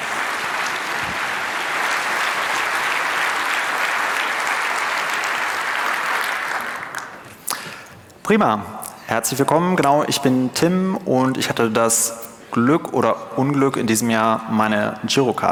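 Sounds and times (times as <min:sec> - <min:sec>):
large audience applauding for arriving speaker: 0:00.0 - 0:07.8
speech: 0:08.3 - 0:15.4.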